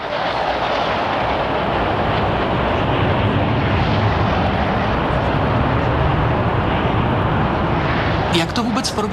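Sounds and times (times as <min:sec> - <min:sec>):
formation of MiG-21 jet fighters roaring overhead: 0:00.0 - 0:09.1
speech: 0:08.8 - 0:09.1.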